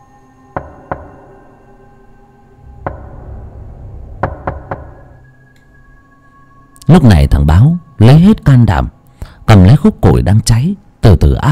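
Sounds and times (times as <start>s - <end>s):
low steady background: 0.0s - 11.4s
urgent knocking on a door: 0.6s - 1.4s, 2.8s - 5.2s
speech: 6.9s - 11.4s.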